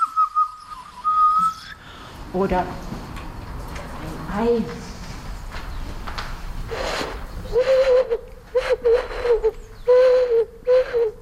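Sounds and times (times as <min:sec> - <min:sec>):
breathy hollow owl-like hoots blown on a snail shell: 0:00.0 - 0:01.8, 0:06.8 - 0:11.2
speech: 0:02.3 - 0:02.9, 0:04.3 - 0:04.9.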